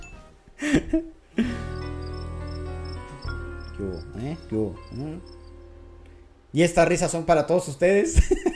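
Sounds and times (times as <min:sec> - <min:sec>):
speech: 0:00.7 - 0:01.1, 0:04.5 - 0:05.4, 0:06.5 - 0:08.4
high-pitched cricket chirping: 0:01.6 - 0:05.9.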